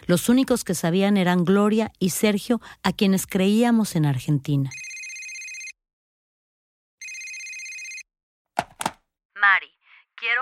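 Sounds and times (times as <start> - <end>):
speech: 0.1 - 4.8
telephone ringing at night: 4.7 - 5.8, 7.0 - 8.1
sharp knocks: 8.6 - 9.0.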